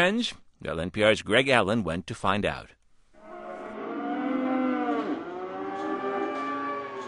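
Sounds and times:
speech: 0.0 - 2.8
cattle mooing at livestock auction pens: 3.2 - 7.0.

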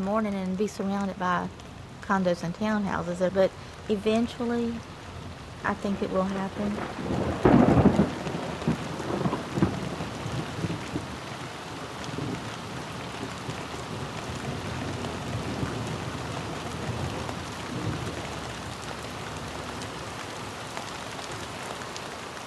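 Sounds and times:
heavy rain pouring: 0.0 - 22.4
speech: 0.1 - 4.9, 5.6 - 8.0
deep roll of thunder booming: 6.0 - 20.1.

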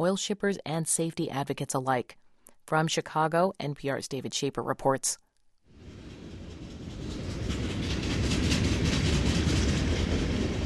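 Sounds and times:
speech: 0.0 - 5.2
freight train rolling past: 5.8 - 10.6
freight train wheels clattering over rails: 5.8 - 10.6.

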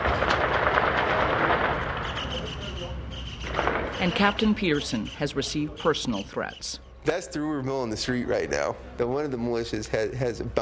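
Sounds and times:
gunshots: 0.0 - 4.6
speech: 4.0 - 10.5.

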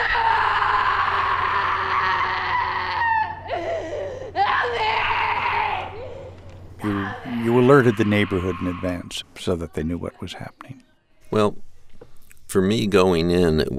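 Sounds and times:
woman screaming: 0.0 - 9.0
speech: 7.8 - 10.8, 11.4 - 11.6, 12.5 - 13.7.

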